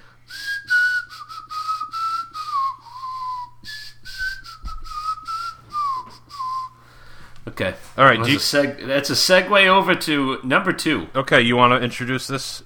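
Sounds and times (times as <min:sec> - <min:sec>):
faint steady hum: 0:00.0 - 0:12.6
person whistling a melody: 0:00.3 - 0:06.8
speech: 0:07.6 - 0:12.6.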